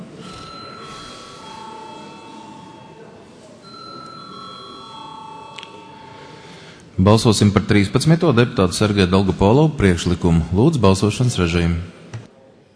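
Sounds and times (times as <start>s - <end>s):
murmur of many people talking in a large hall: 0.0s - 12.7s
electric parliament chamber bell ringing before a vote: 0.2s - 6.6s
speech: 7.0s - 12.0s.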